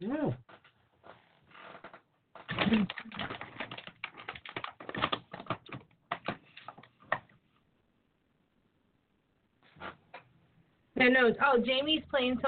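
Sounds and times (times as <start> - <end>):
typing on a keyboard: 2.5 - 7.2
speech: 2.7 - 3.0, 11.1 - 12.4.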